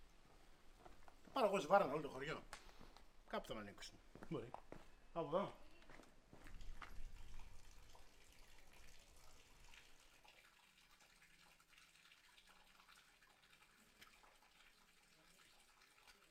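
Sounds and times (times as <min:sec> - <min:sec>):
water running from the spout of an old village fountain: 0:01.4 - 0:02.4, 0:06.3 - 0:16.2
speech: 0:01.4 - 0:02.6, 0:03.3 - 0:05.6.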